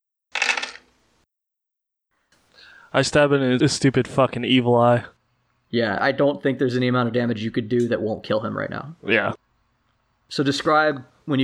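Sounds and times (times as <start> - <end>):
dice being scooped together and rattled: 0.3 - 0.9
speech: 2.9 - 9.4, 10.3 - 11.4.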